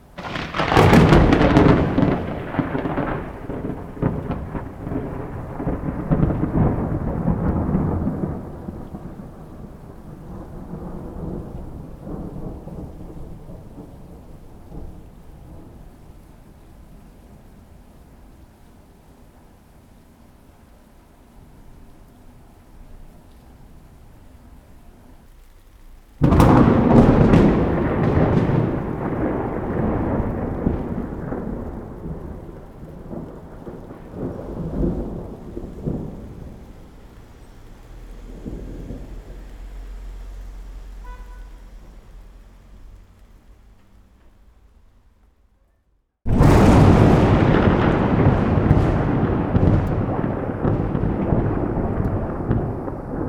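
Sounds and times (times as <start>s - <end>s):
heavy thunder: 0.0s - 16.6s, 26.2s - 43.0s, 46.3s - 53.2s
rain: 0.0s - 53.2s.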